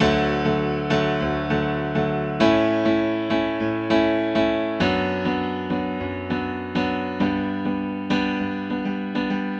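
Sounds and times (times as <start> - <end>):
grand piano playing in D major: 0.0 - 9.5.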